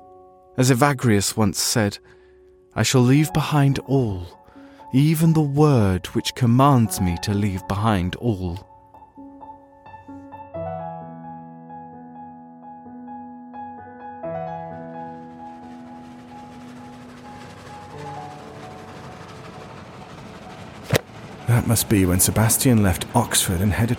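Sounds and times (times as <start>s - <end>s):
speech: 0.6s - 2.2s, 2.8s - 8.7s, 21.6s - 23.9s
train rumbling on rails: 14.7s - 23.9s.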